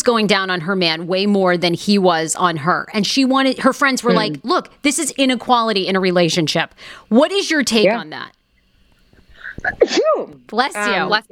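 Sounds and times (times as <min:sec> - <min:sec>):
speech: 0:00.0 - 0:08.4, 0:09.6 - 0:11.3
sharp sneeze: 0:09.4 - 0:10.3.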